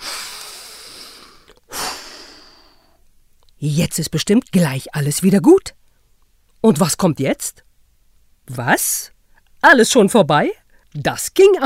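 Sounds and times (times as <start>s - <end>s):
deep breathing in and out: 0.0s - 3.0s
speech: 3.6s - 5.8s, 6.6s - 7.7s, 8.5s - 11.6s.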